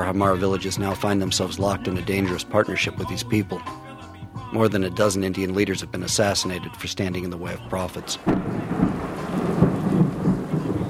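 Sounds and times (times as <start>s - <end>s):
speech: 0.0s - 3.9s, 4.5s - 8.9s
low rumbles of thunder during a nighttime thunderstorm: 7.8s - 10.8s
heavy rain pouring at night over a village: 7.9s - 10.8s.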